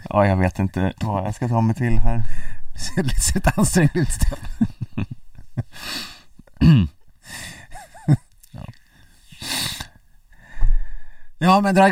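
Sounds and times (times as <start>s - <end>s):
speech: 0.1s - 7.5s, 8.1s - 8.7s, 11.4s - 11.8s
sitting person panting heavily: 2.2s - 2.6s, 5.7s - 6.3s, 7.2s - 7.8s, 9.4s - 11.4s.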